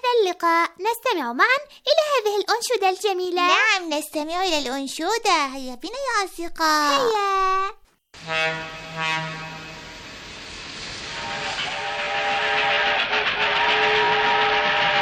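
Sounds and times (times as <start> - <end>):
speech: 0.3 - 9.6
fast train whistle blasts: 8.2 - 15.0.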